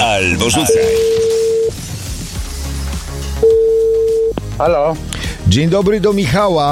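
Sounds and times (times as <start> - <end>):
speech: 0.2 - 1.3, 4.6 - 6.6
electronic telephone ringback tone of an outgoing call: 0.6 - 1.7, 3.5 - 4.3.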